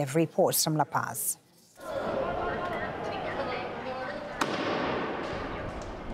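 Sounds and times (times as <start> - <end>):
speech: 0.0 - 1.4
loud outdoor crowd noise and overlapping voices at a street demonstration: 1.0 - 6.1
firecracker bang lit by protesters at a street demonstration in La Paz Bolivia: 4.4 - 5.4.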